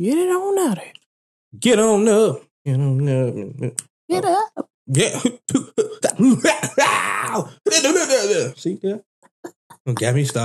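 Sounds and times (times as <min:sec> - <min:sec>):
speech: 0:00.0 - 0:10.4
strained vocal sound: 0:02.7 - 0:06.8, 0:09.4 - 0:10.4
laughter: 0:04.9 - 0:08.8, 0:09.8 - 0:10.4
person coughing: 0:05.0 - 0:06.8, 0:09.9 - 0:10.4.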